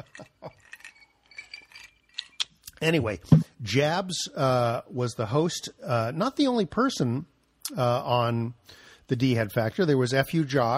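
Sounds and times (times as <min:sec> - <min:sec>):
glasses clinking in a toast: 0:00.0 - 0:02.7
speech: 0:02.8 - 0:10.7.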